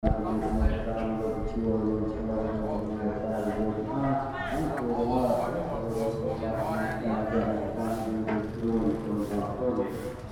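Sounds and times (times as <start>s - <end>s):
monk-like chanting voice in Phnom Penh Cambodia: 0.0s - 10.2s.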